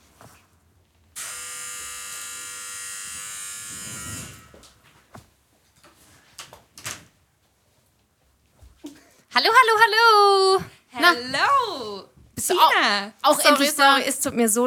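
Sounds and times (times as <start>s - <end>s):
electric door buzzer buzz: 1.2s - 4.8s
speech: 9.4s - 14.6s.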